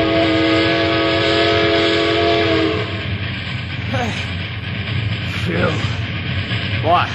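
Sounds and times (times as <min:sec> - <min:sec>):
train horn blaring: 0:00.0 - 0:03.2
train rumbling on tracks: 0:00.0 - 0:07.1.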